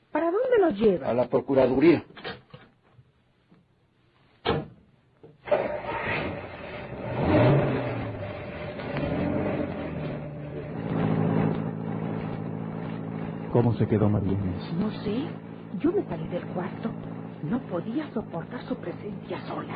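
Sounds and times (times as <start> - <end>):
speech: 0.6 - 2.2, 13.6 - 19.7
car door thudding shut: 4.4 - 4.8
car engine starting and revving: 5.4 - 19.7.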